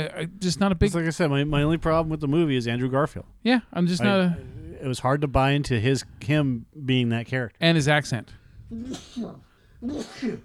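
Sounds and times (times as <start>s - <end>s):
speech: 0.0s - 10.4s
person imitating sneezes: 8.7s - 10.4s.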